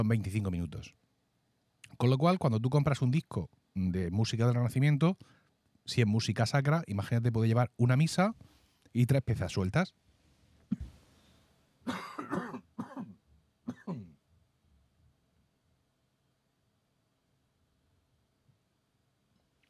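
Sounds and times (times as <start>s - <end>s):
speech: 0.0s - 1.1s, 1.9s - 10.0s
person coughing: 10.7s - 11.0s, 11.8s - 14.2s.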